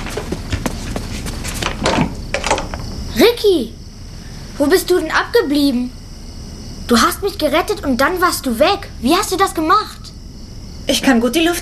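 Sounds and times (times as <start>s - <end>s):
door being opened with wooden clicks, knocks and a scrape: 1.6s - 2.9s
speech: 3.2s - 3.8s, 4.6s - 6.0s, 6.9s - 10.0s, 10.9s - 11.6s.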